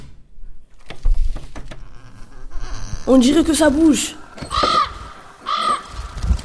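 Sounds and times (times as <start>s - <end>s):
speech: 3.1s - 4.2s
crow cawing in an abandoned room in Pripyat: 4.2s - 6.2s.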